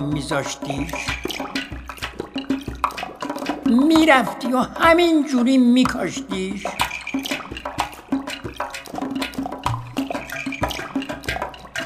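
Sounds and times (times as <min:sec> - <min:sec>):
water running from a tap: 0:00.0 - 0:04.6, 0:06.0 - 0:11.8
speech: 0:00.1 - 0:01.5, 0:03.7 - 0:06.9.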